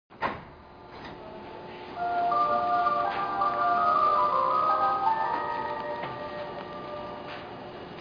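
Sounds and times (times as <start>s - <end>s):
train horn melody: 2.0s - 7.6s.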